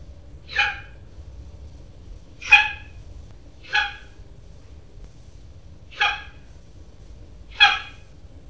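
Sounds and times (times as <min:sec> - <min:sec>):
Acinonyx jubatus yapping: 0:00.4 - 0:01.0, 0:02.4 - 0:03.0, 0:03.6 - 0:04.2, 0:05.9 - 0:06.5, 0:07.5 - 0:08.1.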